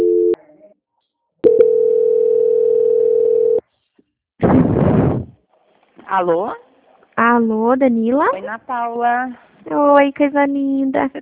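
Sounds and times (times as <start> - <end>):
telephone line tones while a call is being transferred: 0.0 - 0.4, 1.4 - 3.6
rough burst of noise: 4.4 - 5.4
speech: 6.1 - 6.6, 7.2 - 11.1.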